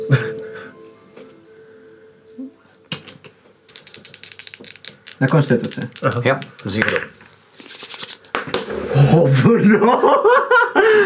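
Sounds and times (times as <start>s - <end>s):
two dice clattering on a hard surface: 2.9s - 8.6s
speech: 5.2s - 7.0s, 9.2s - 10.5s.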